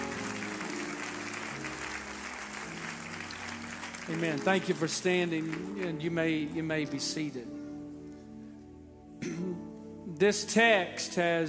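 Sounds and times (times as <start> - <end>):
congregation clapping hands: 0.0 - 7.2
low organ-like chords: 0.0 - 11.4
speech: 4.1 - 7.6, 10.2 - 11.4.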